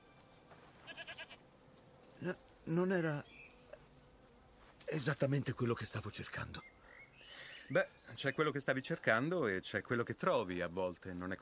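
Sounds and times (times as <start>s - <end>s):
goat bleating: 0.8s - 1.4s
speech: 2.2s - 3.3s, 4.9s - 6.7s, 7.7s - 11.4s.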